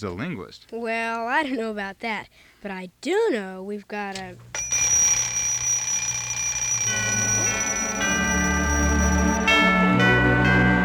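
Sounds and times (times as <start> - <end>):
speech: 0.0 - 4.7
old clock chiming a Christmas carol: 4.6 - 10.8.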